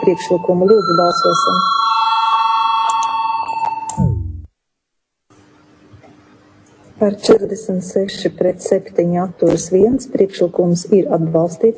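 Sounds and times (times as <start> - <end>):
speech: 0.0 - 2.2, 7.0 - 11.7
chairman's bell ringing in a parliamentary session to call a vote: 0.0 - 4.0.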